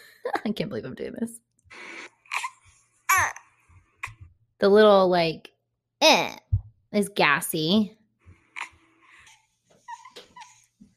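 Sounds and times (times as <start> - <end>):
speech: 0.4 - 1.5, 4.6 - 8.0
voice imitating a baby's whimper: 9.8 - 10.7.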